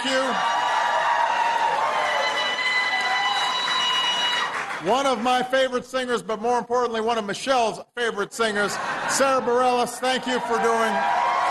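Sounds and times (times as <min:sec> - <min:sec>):
large audience applauding: 0:00.0 - 0:05.4, 0:10.2 - 0:11.5
speech: 0:04.8 - 0:11.2.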